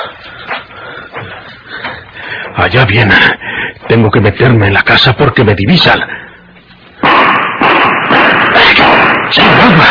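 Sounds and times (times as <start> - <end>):
speech: 2.6 - 6.2
gunshots fired at a fleeing man: 7.0 - 9.8.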